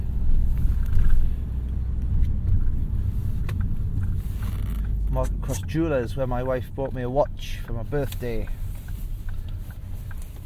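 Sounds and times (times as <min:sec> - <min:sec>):
car engine rumbling inside the vehicle: 0:00.0 - 0:10.4
car turn signal indicator clicking: 0:00.2 - 0:10.4
speech: 0:05.2 - 0:08.6.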